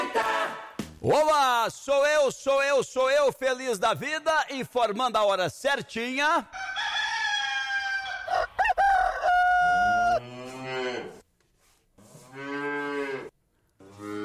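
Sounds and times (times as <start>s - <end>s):
speech: 1.0s - 6.6s
rooster crowing loudly: 6.5s - 10.2s
cow mooing while being called in for milking: 9.9s - 11.2s, 12.1s - 14.2s.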